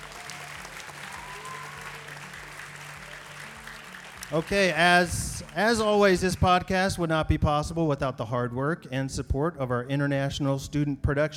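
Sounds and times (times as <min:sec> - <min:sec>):
live audience applause: 0:00.0 - 0:06.7
speech: 0:04.3 - 0:11.3.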